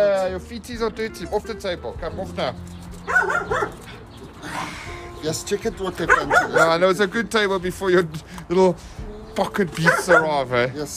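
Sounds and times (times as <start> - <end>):
speech: 0.0 - 10.9
dog barking: 3.0 - 4.0, 6.0 - 6.8, 9.8 - 10.4.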